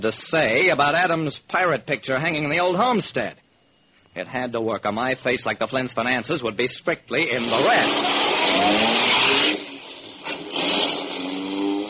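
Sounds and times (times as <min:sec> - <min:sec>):
speech: 0:00.0 - 0:03.4, 0:04.2 - 0:09.1
car engine revving as the vehicle pulls away: 0:07.4 - 0:11.8.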